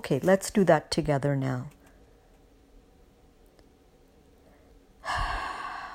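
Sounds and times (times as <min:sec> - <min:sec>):
speech: 0:00.0 - 0:01.8
person breathing in and out during a guided breathing exercise: 0:04.5 - 0:05.9.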